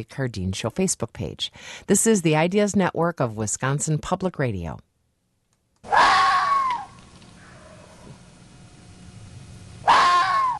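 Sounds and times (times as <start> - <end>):
speech: 0.0 - 4.9
vixen screams: 5.8 - 8.0, 9.8 - 10.5.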